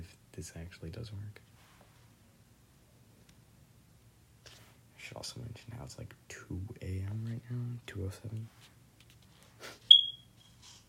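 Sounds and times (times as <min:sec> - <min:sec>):
speech: 0:00.4 - 0:01.5, 0:05.1 - 0:08.7
soft rustle: 0:01.3 - 0:02.2, 0:04.4 - 0:04.8, 0:08.3 - 0:09.7
fire alarm high-pitched beep: 0:09.9 - 0:10.3.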